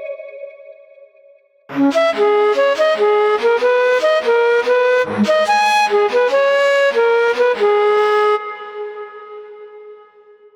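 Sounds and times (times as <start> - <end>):
hip hop rap lead melody demo: 1.7 - 10.0.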